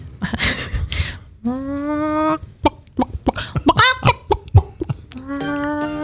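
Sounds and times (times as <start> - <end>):
woman imitating a chicken clucking: 1.4 - 6.0.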